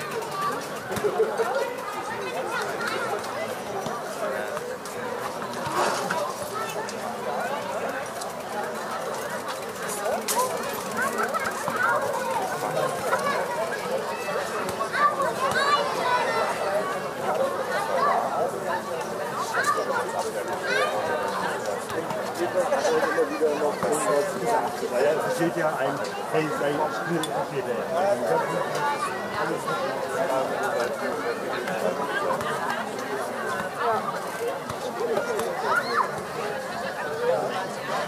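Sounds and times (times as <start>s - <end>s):
children and adults chattering and calling out at an outdoor playground: 0.0s - 38.0s.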